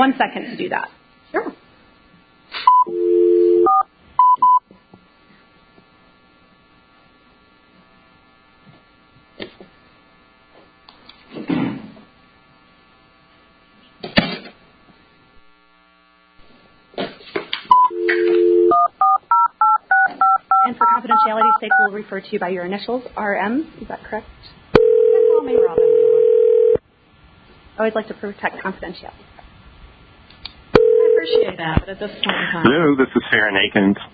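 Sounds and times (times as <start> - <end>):
speech: 0.0 - 1.6, 21.6 - 24.6, 25.4 - 25.9, 27.8 - 29.3, 31.2 - 34.1
telephone keypad dialing tones: 2.7 - 4.6, 17.7 - 21.9, 24.8 - 26.8, 30.8 - 31.5.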